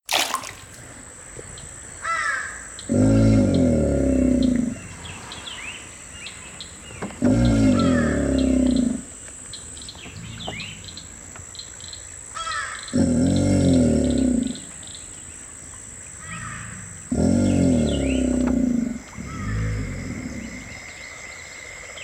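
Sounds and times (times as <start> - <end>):
alligator snoring with long low rasping breaths: 2.8 - 9.2, 9.9 - 11.3, 12.8 - 15.0, 16.1 - 22.0.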